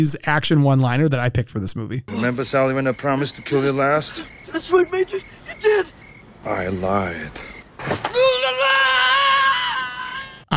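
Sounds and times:
speech: 0.0 - 8.4
man screaming in movie scene: 8.1 - 10.5.

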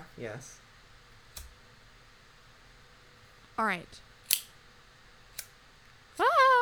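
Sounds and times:
speech: 0.2 - 0.7, 3.6 - 4.1
lighter being flicked: 1.3 - 1.6, 4.3 - 4.6, 5.3 - 5.6.

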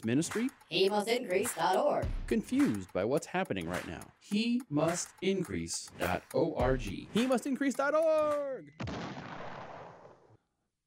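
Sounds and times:
speech: 0.0 - 9.2
explosion sound effect: 8.8 - 10.3.

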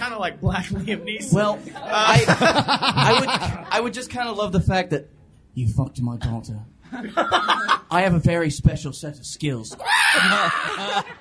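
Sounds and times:
speech: 0.2 - 11.2
laughter: 0.6 - 3.9, 6.9 - 7.9, 10.0 - 11.2
person imitating a large prehistoric bird screech: 9.8 - 11.0.

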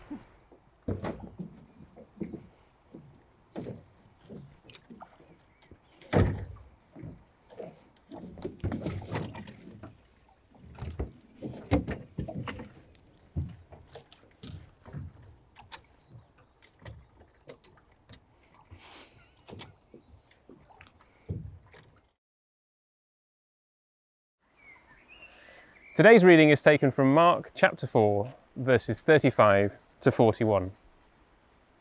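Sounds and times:
wooden knocks, bumps and creaks of people climbing into a small boat: 0.5 - 10.0, 10.6 - 18.2
speech: 26.0 - 30.8.

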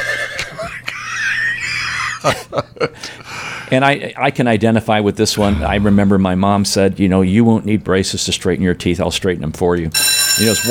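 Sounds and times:
horse whinnying: 0.0 - 0.5
speech: 2.2 - 10.6
horse snorting: 5.4 - 6.2.

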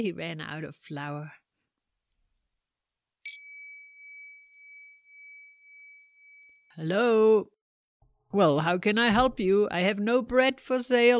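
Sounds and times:
speech: 0.0 - 1.4, 6.8 - 7.6, 8.3 - 11.1
doorbell ringing with a bright metallic ding: 3.3 - 6.7.

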